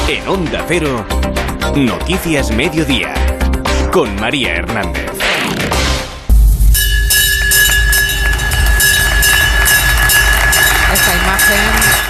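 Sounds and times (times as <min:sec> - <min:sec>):
speech: 0:00.1 - 0:03.2, 0:03.9 - 0:05.7
electric bell ringing at a stock exchange opening: 0:06.7 - 0:12.0.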